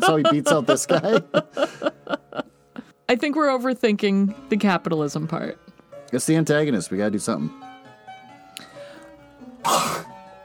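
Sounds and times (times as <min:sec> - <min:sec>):
laughter: 0:00.0 - 0:02.5
speech: 0:00.1 - 0:02.0, 0:03.1 - 0:07.7
faint catch of breath: 0:08.6 - 0:09.2
throat clearing caused by a piece of beef jerky stuck in the throat: 0:09.6 - 0:10.1.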